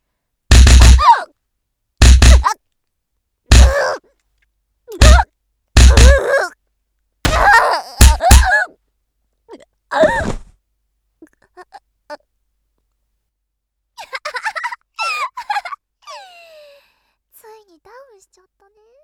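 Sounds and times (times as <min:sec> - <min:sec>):
heavy punches landing on a body: 0:00.5 - 0:01.2, 0:02.0 - 0:02.5, 0:03.5 - 0:03.9, 0:05.0 - 0:05.2, 0:05.8 - 0:06.3, 0:07.3 - 0:08.5
pained grunts and groans: 0:00.6 - 0:01.3, 0:03.5 - 0:04.0, 0:04.9 - 0:05.2, 0:05.8 - 0:06.6, 0:07.3 - 0:08.6.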